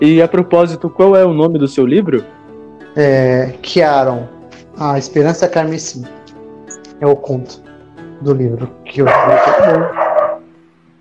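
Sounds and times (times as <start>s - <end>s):
speech: 0.0s - 2.4s, 3.0s - 6.2s, 7.0s - 7.6s, 8.2s - 10.0s
dogs barking: 9.0s - 10.5s.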